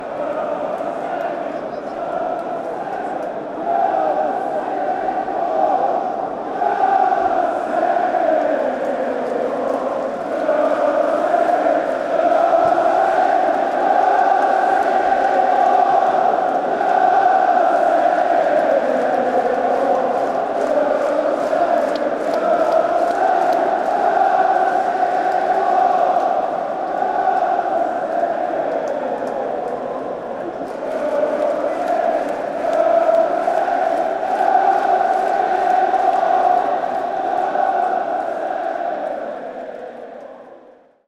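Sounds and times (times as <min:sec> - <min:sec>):
football fans chanting: 0:00.0 - 0:41.0.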